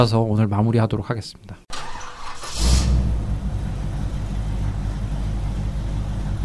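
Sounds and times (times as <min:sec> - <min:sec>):
speech: 0:00.0 - 0:01.6
combustion-engine car engine starting and idling: 0:01.7 - 0:06.4.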